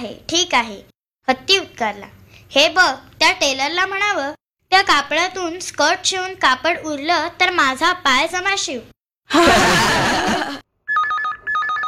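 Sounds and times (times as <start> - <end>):
speech: 0.0 - 10.3
laughter: 9.3 - 10.6
mobile phone SMS alert chime: 10.9 - 11.8.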